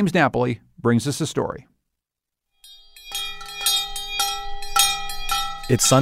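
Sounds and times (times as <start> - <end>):
speech: 0.0 - 1.7, 5.7 - 6.0
two large hand bells rung at a hilltop church in Canterbury New Hampshire: 2.6 - 6.0.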